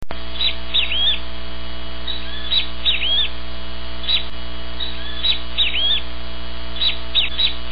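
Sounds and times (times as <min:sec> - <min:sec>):
great kiskadee calling: 0:00.0 - 0:07.7
low hum: 0:00.0 - 0:07.7.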